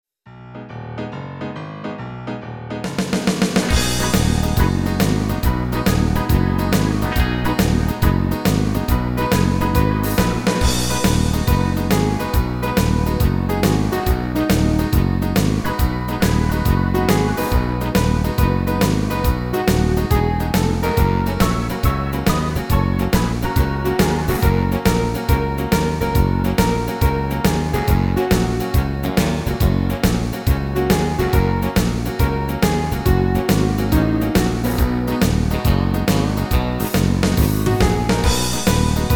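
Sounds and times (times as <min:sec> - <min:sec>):
hits: 0:02.8 - 0:39.1.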